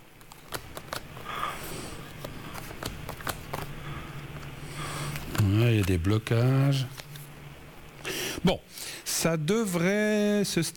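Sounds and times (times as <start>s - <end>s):
tarot cards being shuffled and drawn: 0.0s - 7.4s
speech: 5.8s - 7.0s, 8.4s - 10.7s.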